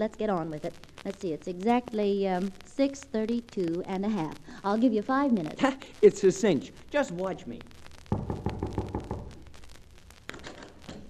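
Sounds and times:
speech: 0.0s - 7.8s
firm knocking on a person's door: 8.1s - 9.3s
isolated thump: 8.1s - 9.4s.

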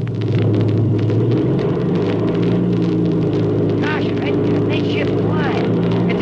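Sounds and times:
propeller plane engine roaring during takeoff: 0.0s - 6.2s
faint voices: 3.8s - 6.2s.

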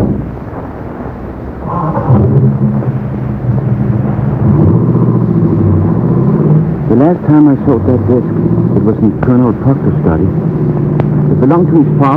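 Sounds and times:
car engine rumble pulling away: 0.0s - 12.1s
speech: 7.0s - 10.8s, 11.4s - 12.1s.

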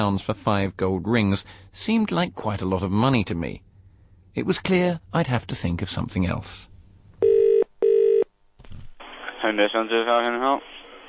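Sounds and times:
speech: 0.0s - 3.6s, 4.4s - 6.7s, 9.4s - 10.8s
telephone call being dialled with electronic tones: 7.2s - 8.2s.

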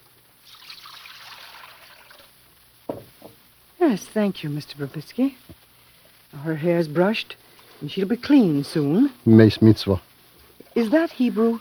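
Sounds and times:
water trickling and splashing into a basin: 0.4s - 2.4s
speech: 3.8s - 5.6s, 6.4s - 10.1s, 10.8s - 11.5s.

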